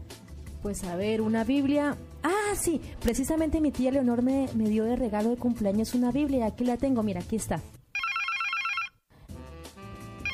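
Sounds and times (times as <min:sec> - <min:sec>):
speech: 0:00.6 - 0:07.8
telephone ringing in a bright trilling electronic burst: 0:08.0 - 0:09.0.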